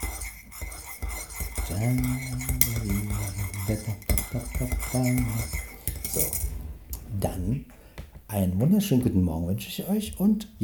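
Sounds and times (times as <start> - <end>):
metal spoon stirring coffee in a ceramic cup: 0.0 - 7.1
speech: 1.7 - 3.0, 3.7 - 6.6, 7.2 - 10.6.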